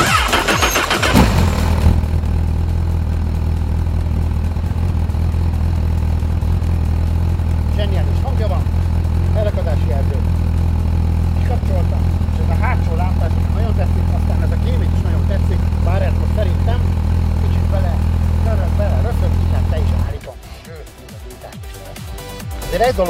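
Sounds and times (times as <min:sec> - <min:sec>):
Honda Hornet SP 1000 motorcycle engine starting and idling: 0:00.0 - 0:23.0.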